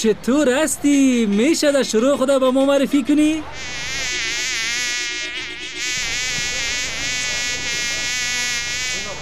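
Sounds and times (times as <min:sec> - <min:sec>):
speech: 0:00.0 - 0:04.3
housefly buzzing at a garbage bin: 0:03.6 - 0:09.1.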